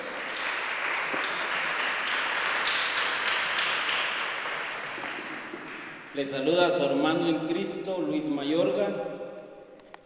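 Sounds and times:
church congregation applauding: 0.0 - 6.7
speech: 6.2 - 9.2.

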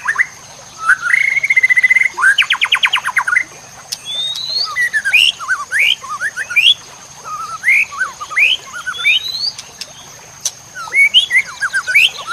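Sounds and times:
white-rumped shama giving bright rising whistles: 0.0 - 3.3, 3.9 - 9.6, 10.8 - 12.3.

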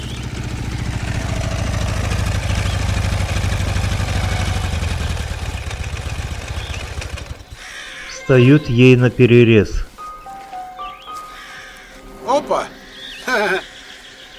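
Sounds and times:
motorcycle carrying two riders passing along a forest track: 0.0 - 7.8, 11.0 - 14.3
speech: 8.3 - 9.9.

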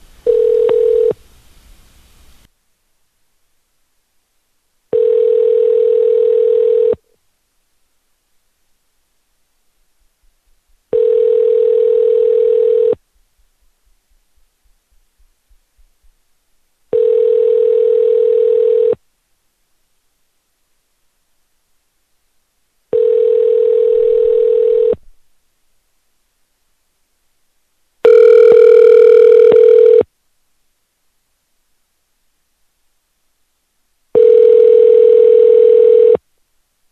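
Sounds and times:
ringback tone on an outgoing telephone call: 0.3 - 1.2, 4.9 - 7.0, 10.9 - 13.0, 16.9 - 19.0, 22.9 - 25.0, 28.0 - 30.1, 34.2 - 36.2.

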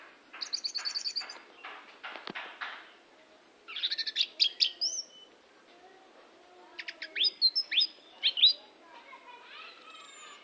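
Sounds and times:
Oriental magpie-robin song of clicking, whistled and chattering notes: 0.0 - 1.8, 3.7 - 5.3, 6.7 - 8.7, 9.6 - 10.4.

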